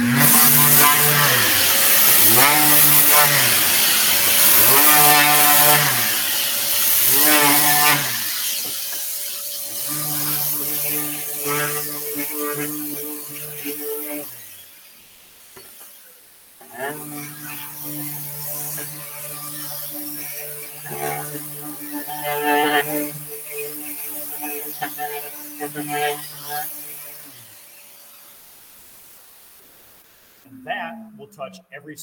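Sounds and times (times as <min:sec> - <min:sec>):
power sander sanding cabinet door panels: 0:00.0 - 0:30.5
speech: 0:31.3 - 0:32.0.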